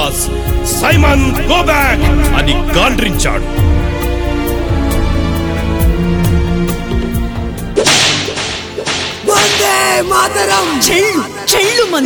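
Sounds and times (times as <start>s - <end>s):
music: 0.0s - 12.0s
speech: 0.1s - 4.0s, 10.0s - 12.0s
whip cracks from a lash striking a protester: 7.8s - 10.9s.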